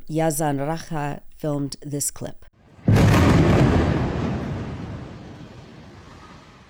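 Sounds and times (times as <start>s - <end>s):
speech: 0.1s - 2.5s
explosion of a high-rise residential building being struck: 2.6s - 6.6s.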